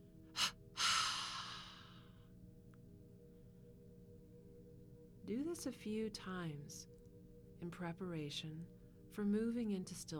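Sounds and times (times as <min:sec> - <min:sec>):
double exhalation through the mouth: 0:00.4 - 0:02.0
speech: 0:05.3 - 0:07.0, 0:07.6 - 0:10.1.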